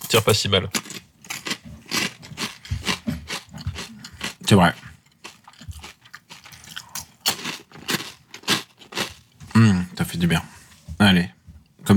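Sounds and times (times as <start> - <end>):
speech: 0.1 - 1.0, 4.5 - 4.8, 9.6 - 11.9
crunching and chewing a crisp grissini breadstick: 0.8 - 9.3.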